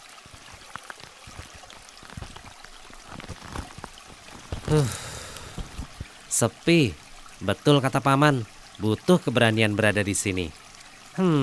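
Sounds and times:
small river running over stones: 0:00.0 - 0:11.4
water splash: 0:03.0 - 0:11.4
speech: 0:04.7 - 0:05.0, 0:06.4 - 0:10.6, 0:11.2 - 0:11.4.

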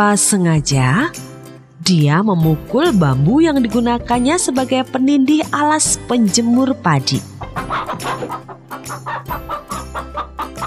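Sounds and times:
speech: 0:00.0 - 0:10.6
chicken clucking: 0:07.4 - 0:10.6.

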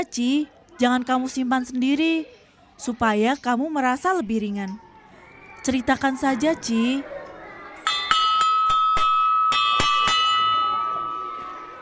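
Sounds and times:
speech: 0:00.0 - 0:04.8, 0:05.6 - 0:07.2
electric school bell ringing for start of class: 0:07.8 - 0:11.8.

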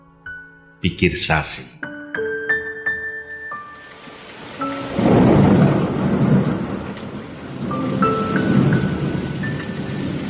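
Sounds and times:
speech: 0:00.8 - 0:01.8
steady rain: 0:03.5 - 0:10.2
deep rumbles of thunder: 0:03.9 - 0:10.2.

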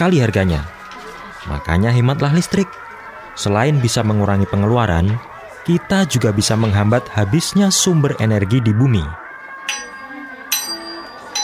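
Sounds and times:
speech: 0:00.0 - 0:00.7, 0:01.4 - 0:09.8
school bell ringing with metallic strikes: 0:09.6 - 0:11.4.

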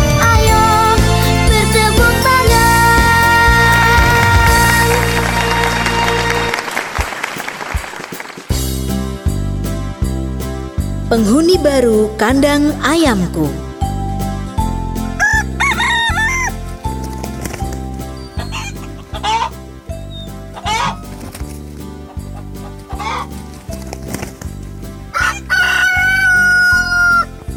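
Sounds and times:
loud rhythmic backing music: 0:00.0 - 0:27.5
speech: 0:11.2 - 0:13.6
plump pet rooster crowing: 0:15.2 - 0:16.5, 0:25.2 - 0:27.3.

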